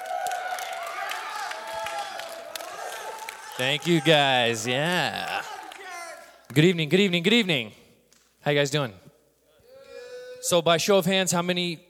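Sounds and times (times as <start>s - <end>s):
people cheering and whooping: 0.0s - 6.4s
audience clapping: 0.0s - 8.3s
speech: 3.6s - 5.4s, 6.5s - 7.8s, 8.4s - 9.0s, 10.4s - 11.8s.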